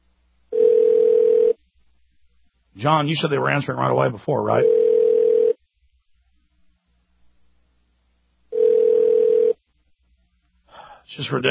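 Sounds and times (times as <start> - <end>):
ringback tone of an unanswered telephone call: 0.5 - 1.6, 4.6 - 5.6, 8.5 - 9.6
speech: 2.8 - 4.8, 11.2 - 11.5.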